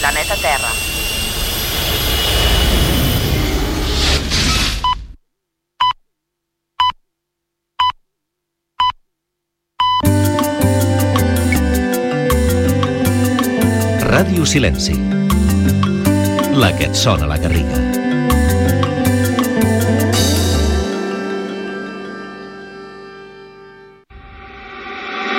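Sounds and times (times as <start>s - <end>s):
speech: 0.0s - 1.0s, 14.2s - 15.4s, 16.6s - 17.8s
spaceship taking off with a jet-like roar: 0.0s - 4.8s, 24.1s - 25.3s
music: 10.0s - 24.8s.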